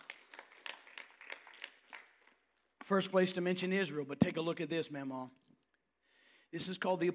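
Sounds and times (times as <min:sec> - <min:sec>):
audience clapping along in praise: 0:00.0 - 0:02.8
speech: 0:02.9 - 0:05.4, 0:06.5 - 0:07.1.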